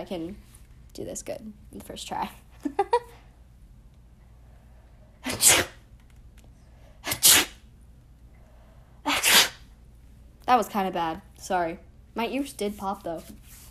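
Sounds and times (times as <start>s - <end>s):
speech: 0.0s - 3.2s, 10.5s - 13.6s
person sneezing: 5.2s - 5.8s, 7.0s - 7.6s, 9.0s - 9.6s.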